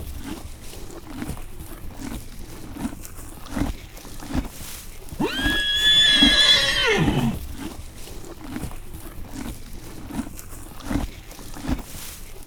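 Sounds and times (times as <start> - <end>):
horse grazing grass in a farmyard: 0.0 - 12.4
horse neighing in a farmyard: 5.2 - 7.6.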